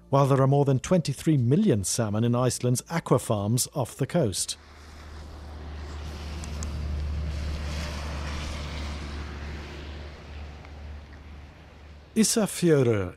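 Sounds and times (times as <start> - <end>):
speech: 0.1 - 4.8, 12.2 - 13.1
wind gusting over a harbour of an old fishing town in Iceland: 4.6 - 12.2.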